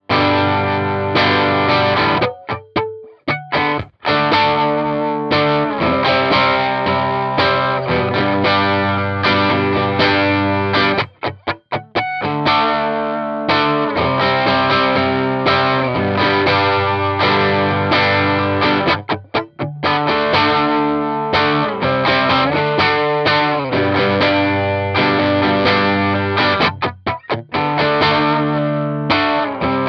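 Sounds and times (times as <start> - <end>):
distorted guitar amp on bridge pickup: 0.0 - 29.8.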